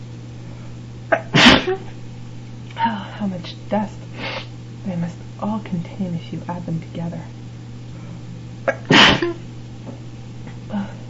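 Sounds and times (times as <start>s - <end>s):
low steady hum: 0.0s - 11.0s
single loud sharp sneeze set off by dust from books: 1.1s - 1.9s, 8.7s - 9.4s
speech: 1.1s - 2.0s, 2.8s - 4.0s, 4.8s - 7.4s, 8.7s - 9.5s.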